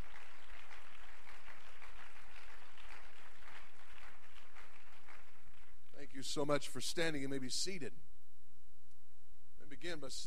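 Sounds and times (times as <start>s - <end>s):
audience applause: 0.0s - 5.8s
speech: 6.2s - 8.1s, 9.8s - 10.2s.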